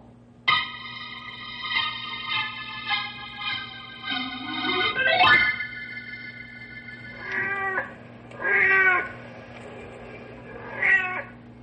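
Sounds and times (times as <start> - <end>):
steady low hum: 0.5 - 10.7
tomcat yowling on the prowl: 7.2 - 9.1, 10.6 - 11.3.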